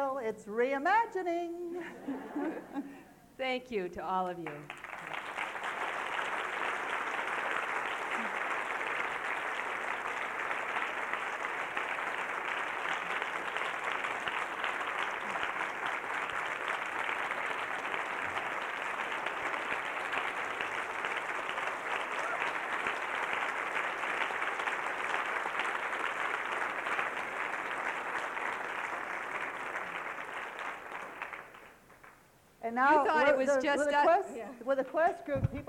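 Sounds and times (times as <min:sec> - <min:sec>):
speech: 0:00.0 - 0:04.8, 0:33.4 - 0:35.6
laughter: 0:01.8 - 0:03.1
audience applause: 0:04.5 - 0:32.2.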